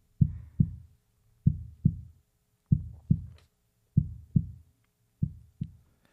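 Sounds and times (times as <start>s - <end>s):
electronic heartbeat from a sound machine: 0.2s - 3.4s, 4.0s - 5.8s.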